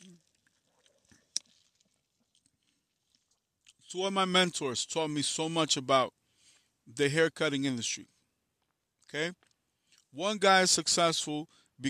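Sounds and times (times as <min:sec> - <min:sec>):
person sipping a drink: 0:00.0 - 0:03.8
speech: 0:03.9 - 0:06.2, 0:06.9 - 0:08.2, 0:09.1 - 0:09.5, 0:10.1 - 0:11.8.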